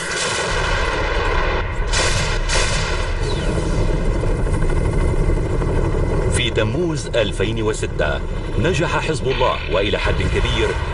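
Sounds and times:
Apache helicopter firing shells in a heavy continuous barrage: 0.0s - 4.1s
booming explosions: 0.0s - 4.5s
Apache helicopter rumble: 0.0s - 10.9s
speech: 6.6s - 10.9s.

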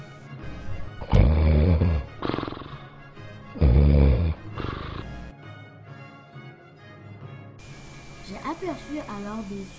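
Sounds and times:
people snoring loudly: 0.0s - 5.3s
speech: 9.0s - 9.7s.

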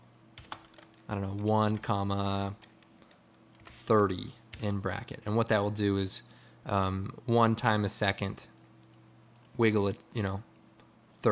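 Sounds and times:
light typing on a computer keyboard: 0.4s - 1.9s, 2.6s - 3.8s
speech: 1.1s - 2.6s, 3.9s - 8.5s, 9.6s - 10.5s.

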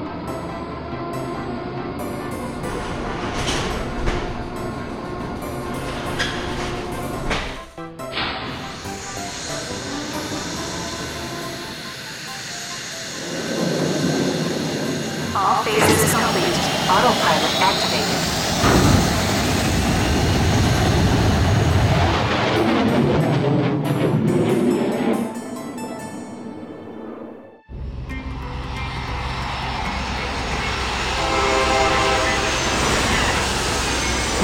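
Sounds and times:
aircraft engines roaring and whining: 0.0s - 34.4s
voices: 15.3s - 18.3s.

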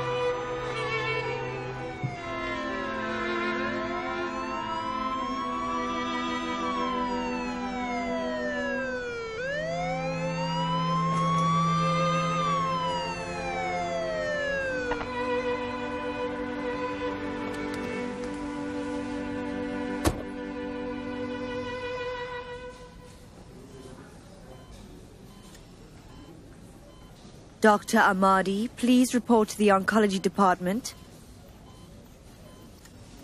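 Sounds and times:
ambulance siren wailing: 0.0s - 21.4s
speech: 27.6s - 31.0s.

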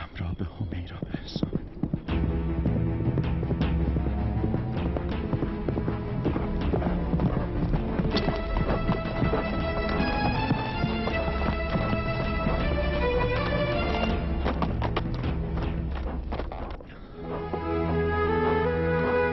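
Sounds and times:
speech: 0.4s - 1.6s
saddled and tacked horse hooves clip-clopping: 0.8s - 19.2s.

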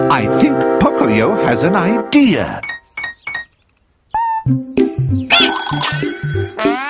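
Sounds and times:
speech: 0.2s - 2.7s, 4.5s - 5.2s
small bell ringing brightly: 5.3s - 6.7s.

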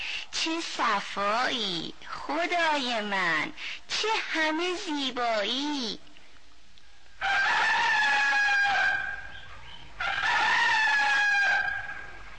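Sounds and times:
speech: 0.4s - 6.1s
rooster crowing: 7.2s - 12.2s.

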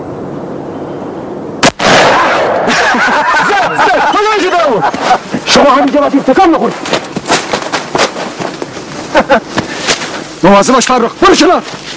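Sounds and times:
gunshots: 1.6s - 3.0s
loud blast: 1.6s - 3.1s
laughter: 2.6s - 5.5s, 9.0s - 9.7s
speech: 4.6s - 7.0s, 9.3s - 9.6s, 10.5s - 11.9s.

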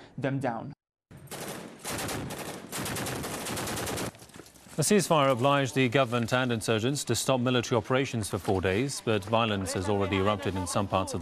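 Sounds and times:
speech: 0.2s - 0.8s, 4.8s - 11.2s
rapid automatic gunfire: 1.2s - 4.2s
laughter: 9.0s - 11.2s.

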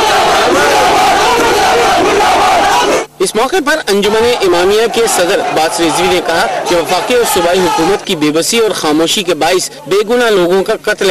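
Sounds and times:
protesters chanting slogans at a rally after Eid al-Fitr prayers: 0.0s - 3.1s, 4.1s - 8.0s
speech: 3.2s - 11.0s.

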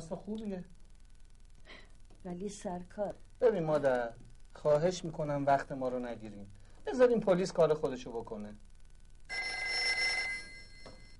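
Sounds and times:
quiet room noise: 0.0s - 11.1s
speech: 0.1s - 0.8s, 2.2s - 8.7s
telephone bell ringing in a bright metallic burst: 9.3s - 11.1s.

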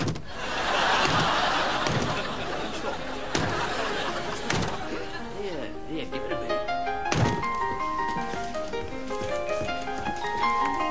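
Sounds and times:
door being shut with a bang: 0.0s - 0.3s, 0.9s - 2.4s, 3.3s - 3.8s, 4.4s - 4.9s, 7.1s - 7.6s
steady noise: 0.0s - 10.9s
laughter: 0.3s - 5.4s
light thud: 1.0s - 2.4s, 3.3s - 3.8s, 4.4s - 4.9s, 7.1s - 7.6s.

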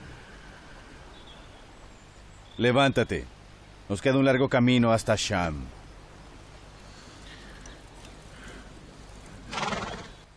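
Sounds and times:
speech: 2.6s - 3.3s, 3.9s - 5.8s
horse whinnying: 9.5s - 10.2s.

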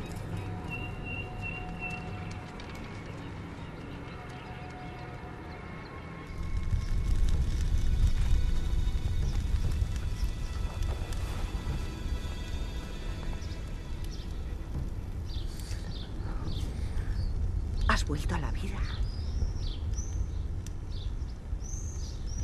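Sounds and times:
horse hooves clip-clopping: 0.0s - 5.6s, 6.3s - 16.1s
continuous low rumble: 0.0s - 22.4s
speech: 18.1s - 19.1s.

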